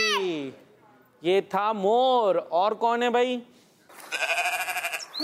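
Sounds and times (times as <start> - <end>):
speech: 0.1 - 0.6, 1.2 - 3.5
goat bleating: 4.1 - 5.1.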